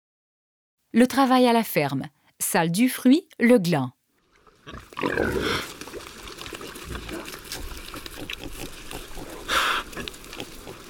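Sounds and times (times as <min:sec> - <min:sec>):
speech: 0:00.9 - 0:04.0, 0:04.7 - 0:05.7
Iberian pigs grunting and squealing: 0:04.6 - 0:05.8, 0:06.4 - 0:10.8.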